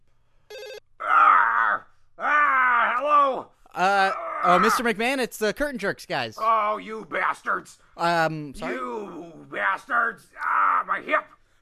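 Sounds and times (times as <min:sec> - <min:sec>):
warbling electronic phone ring: 0:00.5 - 0:00.8
person groaning: 0:01.0 - 0:04.9
speech: 0:04.5 - 0:11.4.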